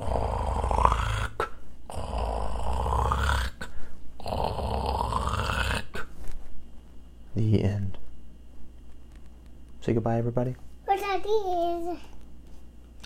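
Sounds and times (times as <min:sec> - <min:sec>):
person imitating gentle snoring: 0:00.0 - 0:06.1
speech: 0:07.4 - 0:07.8, 0:09.8 - 0:12.1.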